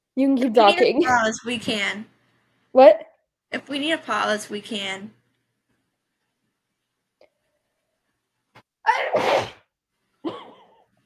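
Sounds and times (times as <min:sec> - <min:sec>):
speech: 0:00.2 - 0:02.1, 0:02.8 - 0:05.2
person sneezing: 0:08.8 - 0:09.7.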